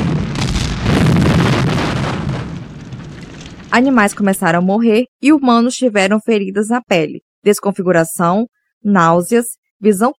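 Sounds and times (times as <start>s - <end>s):
deep booming explosion at a factory in Seveso Italy causing a dioxin cloud: 0.0s - 4.8s
speech: 3.7s - 10.1s.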